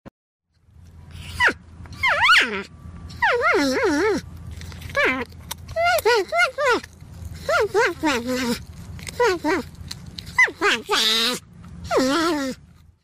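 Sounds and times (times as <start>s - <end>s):
porcupine: 0.8s - 13.0s.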